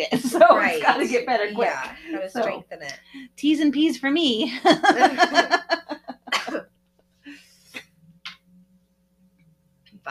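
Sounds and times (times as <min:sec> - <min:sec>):
laughter: 0:00.0 - 0:01.5, 0:04.5 - 0:06.6
speech: 0:00.0 - 0:05.9
person breathing: 0:03.0 - 0:03.4, 0:07.2 - 0:07.8
person coughing: 0:06.3 - 0:06.7.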